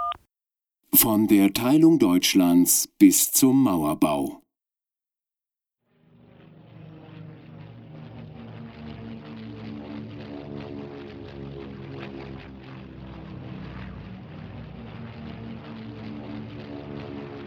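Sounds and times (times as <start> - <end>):
speech: 1.0 - 4.4
propeller aircraft engines droning over Berlin: 6.8 - 17.4.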